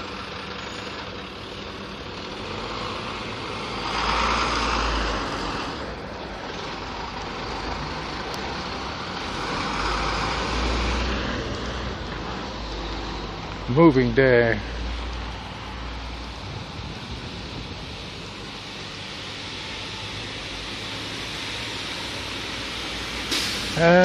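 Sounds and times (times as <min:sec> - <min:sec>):
big trucks rumbling past on a street: 0:00.0 - 0:24.0
constant traffic noise: 0:00.0 - 0:24.0
speech: 0:13.8 - 0:14.8, 0:23.8 - 0:24.0.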